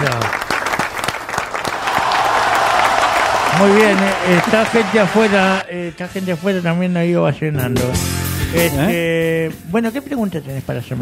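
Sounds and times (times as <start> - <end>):
audience applauding at a live informal evening show: 0.0 - 5.6
speech: 3.6 - 11.0.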